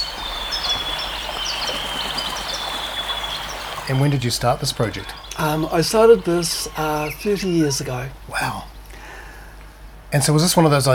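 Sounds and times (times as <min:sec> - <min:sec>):
sustained high whine: 0:00.0 - 0:08.7
faint bird chirps in a forest clearing: 0:00.0 - 0:09.0
outdoor hiss in a forest clearing: 0:00.0 - 0:10.9
speech: 0:03.9 - 0:08.7, 0:10.1 - 0:10.9.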